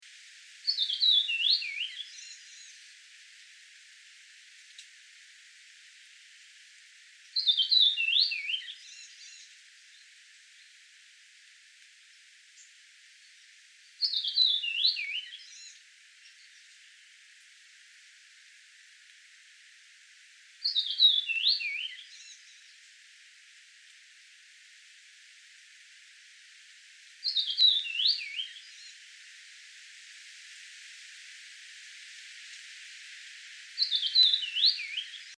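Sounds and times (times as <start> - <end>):
flycatcher calling: 0.6 - 2.9, 7.3 - 10.7, 12.6 - 16.8, 20.6 - 22.8, 27.2 - 29.1, 33.7 - 35.3.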